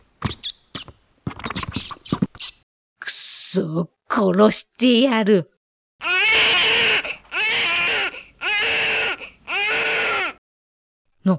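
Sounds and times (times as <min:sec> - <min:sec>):
speech: 0:03.6 - 0:05.5
newborn baby crying in long loud wails: 0:06.0 - 0:10.4.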